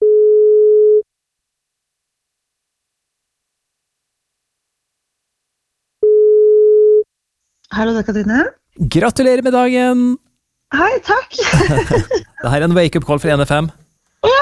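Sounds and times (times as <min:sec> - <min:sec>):
telephone ringing tone on an outgoing call: 0:00.0 - 0:01.0, 0:06.0 - 0:07.0
speech: 0:07.8 - 0:14.4
laughter: 0:11.4 - 0:12.4.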